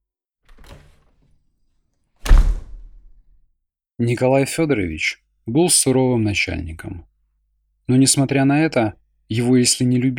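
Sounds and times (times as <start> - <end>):
office door handle rattling: 0.5 - 1.2, 2.2 - 3.3
speech: 4.0 - 7.1, 7.9 - 10.1.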